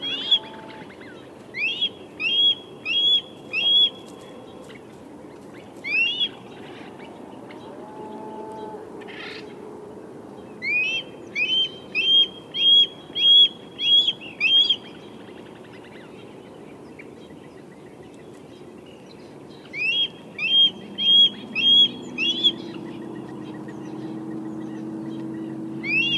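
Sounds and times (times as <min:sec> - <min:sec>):
red-tailed hawk Buteo jamaicensis calls: 0:00.0 - 0:07.1, 0:10.6 - 0:22.8, 0:25.8 - 0:26.1.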